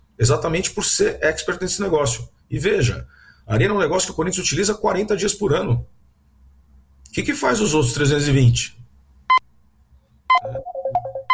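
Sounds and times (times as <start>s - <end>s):
speech: 0.2s - 5.9s, 7.2s - 8.8s, 10.4s - 10.7s
telephone ringtone for an incoming call with electronic beeps and melodic notes: 10.3s - 11.3s.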